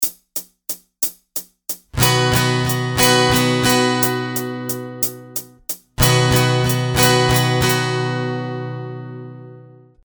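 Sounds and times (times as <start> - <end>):
guitar with capo 4 playing in 6/8 time: 2.0 - 10.0.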